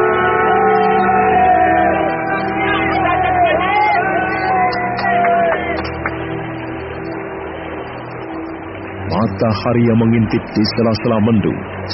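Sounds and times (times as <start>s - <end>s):
large crowd cheering and shouting outdoors on riverbank: 0.0s - 6.2s
speech: 9.4s - 11.9s.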